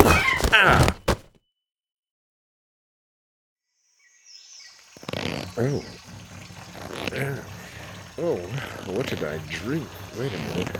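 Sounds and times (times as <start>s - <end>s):
loud thump of someone knocked out with a parrot: 0.0s - 1.3s
speech: 5.6s - 6.0s, 8.2s - 10.7s.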